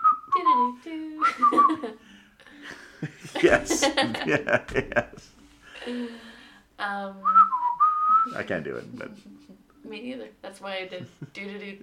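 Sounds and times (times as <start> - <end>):
person whistling aimlessly without any tune: 0.0 - 1.9, 7.3 - 8.4
speech: 0.6 - 2.8, 3.4 - 6.2, 6.8 - 7.4, 8.2 - 11.8
laughter: 1.3 - 6.1, 8.3 - 9.6.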